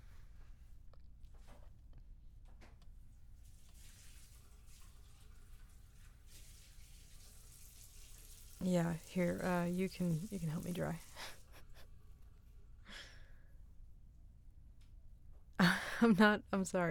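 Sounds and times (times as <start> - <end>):
water running from a sink tap: 3.4 - 11.8
speech: 8.6 - 11.4, 16.0 - 16.9.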